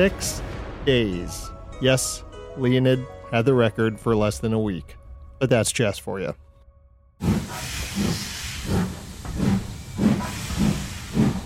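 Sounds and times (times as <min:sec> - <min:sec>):
speech: 0:00.0 - 0:06.4, 0:07.2 - 0:08.8
steam locomotive hissing steadily: 0:07.2 - 0:11.4.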